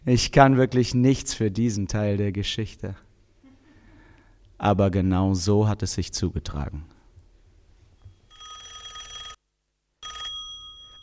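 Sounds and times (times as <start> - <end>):
speech: 0.1 - 3.0, 4.6 - 6.9
old-style telephone bell ringing: 8.3 - 9.4, 10.0 - 11.0.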